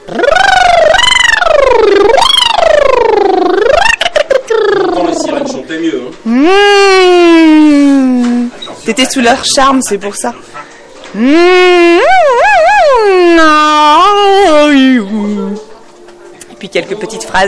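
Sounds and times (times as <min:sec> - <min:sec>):
voice imitating a rising siren: 0:00.0 - 0:05.7, 0:06.3 - 0:08.5, 0:11.2 - 0:15.2
speech: 0:08.9 - 0:12.4, 0:13.2 - 0:15.6, 0:16.7 - 0:17.4.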